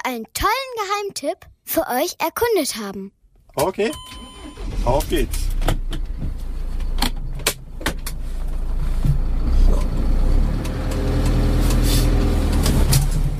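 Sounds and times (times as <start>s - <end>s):
speech: 0.1s - 5.8s
community bus driving along a road toward Glashütte: 3.6s - 13.3s.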